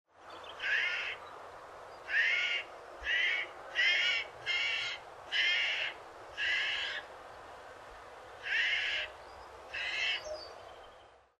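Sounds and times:
jay calling: 0.6s - 1.2s, 2.0s - 7.1s, 8.4s - 10.4s.

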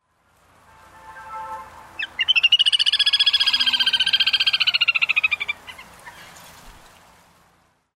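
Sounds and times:
little grebe calling: 2.0s - 6.4s.

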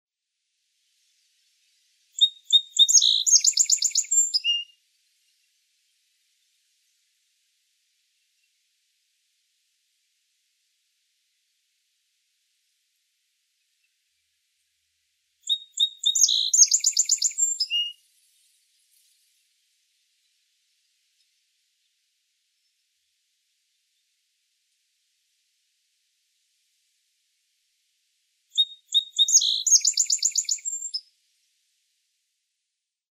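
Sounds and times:
song sparrow: 1.4s - 7.2s, 15.4s - 22.0s, 28.5s - 31.1s.

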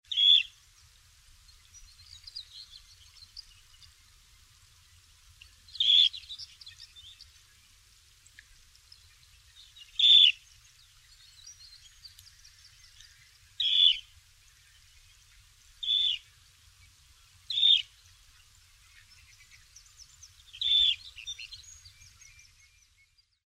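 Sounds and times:
dunlin calling: 0.1s - 0.5s, 5.8s - 6.2s, 9.9s - 10.4s, 13.6s - 14.1s, 15.8s - 16.3s, 17.5s - 17.9s, 20.6s - 21.4s.

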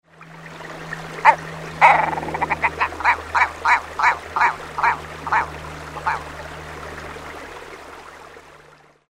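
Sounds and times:
red grouse calling: 1.2s - 6.3s.

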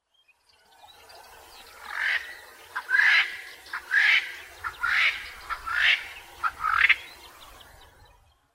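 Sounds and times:
double spurred francolin calling: 1.8s - 7.8s.

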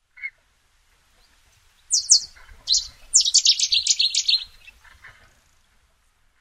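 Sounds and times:
Cetti's warbler singing: 1.9s - 4.8s.

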